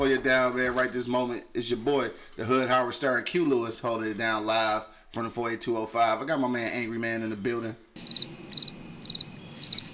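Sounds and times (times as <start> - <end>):
speech: 0.0 - 8.4
crickets chirping: 8.0 - 9.9.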